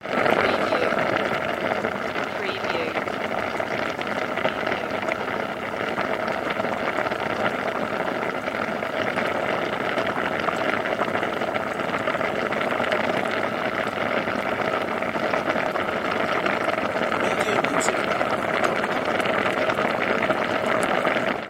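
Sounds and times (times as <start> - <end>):
liquid boiling: 0.0 - 21.4.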